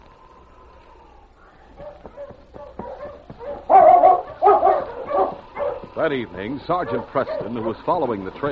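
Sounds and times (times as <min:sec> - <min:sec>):
pack of sled dogs barking and yipping: 0:01.7 - 0:08.5
speech: 0:06.0 - 0:08.5.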